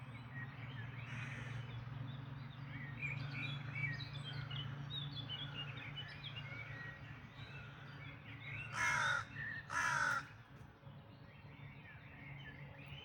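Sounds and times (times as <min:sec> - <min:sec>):
birds singing in a dawn chorus: 0:00.1 - 0:13.0
crow cawing: 0:08.7 - 0:10.3.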